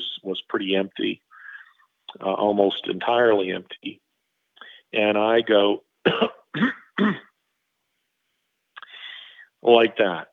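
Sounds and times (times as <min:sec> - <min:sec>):
speech: 0:00.5 - 0:01.2, 0:02.2 - 0:04.0, 0:04.9 - 0:07.3, 0:09.6 - 0:10.3
person imitating coughing: 0:06.1 - 0:07.3
person imitating clearing their throat: 0:06.1 - 0:07.4.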